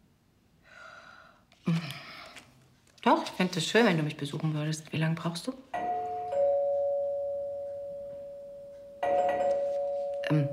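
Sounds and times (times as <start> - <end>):
speech: 3.0 - 5.7
two-tone electronic doorbell chiming: 5.8 - 10.5.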